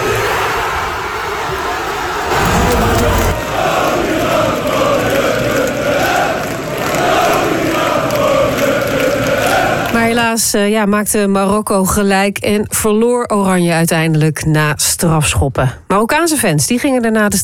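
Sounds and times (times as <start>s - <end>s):
large indoor crowd of football fans cheering and roaring at a goal: 0.0s - 9.9s
speech: 10.4s - 17.4s.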